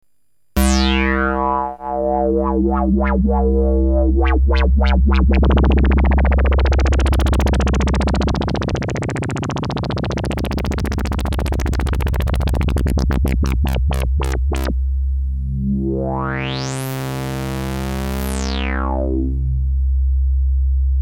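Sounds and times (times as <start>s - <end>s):
lfo modulated synth filter: 0.6s - 21.0s.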